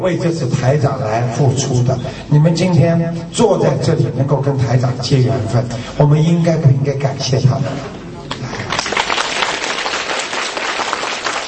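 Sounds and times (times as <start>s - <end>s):
speech: 0.0s - 8.0s
large audience applause: 8.3s - 11.4s.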